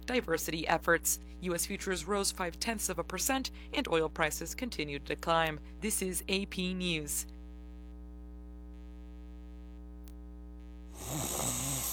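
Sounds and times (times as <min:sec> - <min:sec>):
speech: 0:00.1 - 0:07.4
snoring: 0:10.9 - 0:11.9.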